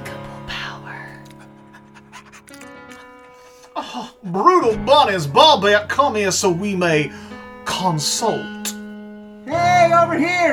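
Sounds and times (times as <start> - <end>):
dog panting: 1.1 - 4.2
speech: 3.9 - 7.2, 7.8 - 8.6, 10.1 - 10.5
sustained musical tone: 4.2 - 10.2.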